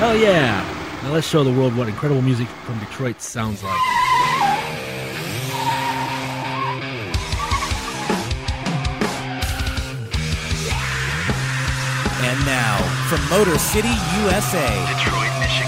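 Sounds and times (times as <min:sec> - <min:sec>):
speech: 0:00.0 - 0:04.0, 0:13.3 - 0:15.2
car engine roaring while accelerating: 0:00.0 - 0:15.6
car tires skidding and squealing: 0:00.0 - 0:15.6.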